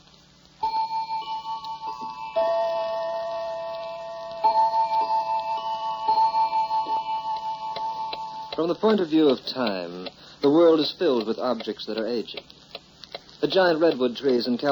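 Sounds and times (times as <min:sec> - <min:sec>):
sustained bright ringing tones: 0:00.6 - 0:09.9
clock ticking: 0:00.6 - 0:14.7
speech: 0:08.6 - 0:12.5, 0:13.4 - 0:14.7.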